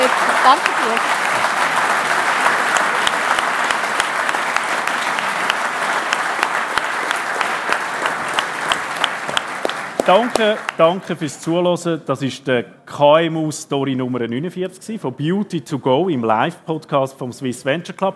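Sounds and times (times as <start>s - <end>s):
live audience applauding: 0.0s - 11.4s
speech: 0.4s - 1.2s, 10.1s - 18.1s.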